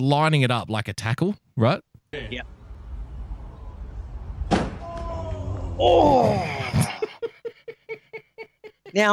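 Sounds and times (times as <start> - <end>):
speech: 0.0 - 2.6, 5.8 - 6.8, 8.9 - 9.1
low steady rumble: 2.2 - 5.8
man slamming his body into a car: 4.4 - 4.8
laughter: 5.9 - 9.1.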